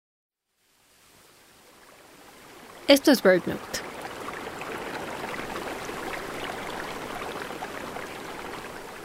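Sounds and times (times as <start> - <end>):
splashing water from a small waterfall in southern Mexico: 1.0 - 9.0
speech: 2.9 - 3.8.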